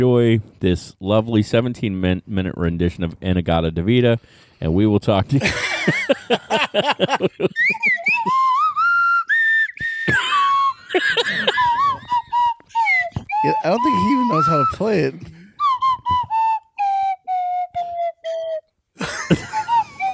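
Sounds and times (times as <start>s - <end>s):
speech: 0.0s - 8.6s, 13.4s - 15.4s
laughter: 5.4s - 8.6s, 10.1s - 12.4s, 19.0s - 20.1s
slide whistle playing: 7.5s - 20.1s.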